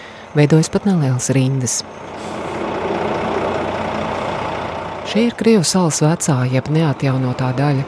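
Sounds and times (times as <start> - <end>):
heavy trucks rumbling in traffic: 0.0 - 7.8
speech: 0.4 - 2.2, 5.1 - 7.8
air brakes hissing on heavy trucks pulling up: 2.0 - 5.0.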